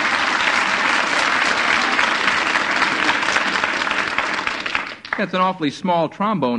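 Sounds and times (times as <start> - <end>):
steady audience applause: 0.0 - 5.6
speech: 5.2 - 6.5.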